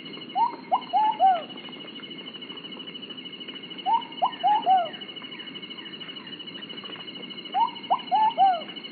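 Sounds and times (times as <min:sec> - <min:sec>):
insects humming: 0:00.0 - 0:08.9
ruddy pigeon Patagioenis subvenaceae singing a high-pitched cooing phrase in Colombia: 0:00.4 - 0:01.6, 0:03.9 - 0:05.0, 0:07.5 - 0:08.7.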